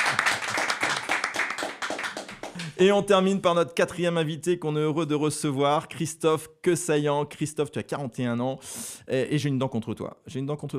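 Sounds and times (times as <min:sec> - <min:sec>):
audience applauding a guest at a live show: 0:00.0 - 0:02.8
speech: 0:02.8 - 0:10.7.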